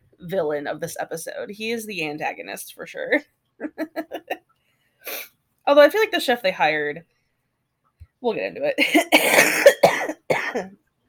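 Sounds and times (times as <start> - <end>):
speech: 0.2 - 4.2, 5.1 - 7.1, 8.2 - 9.9, 10.5 - 10.8
person coughing in harsh throaty bursts: 8.8 - 10.7.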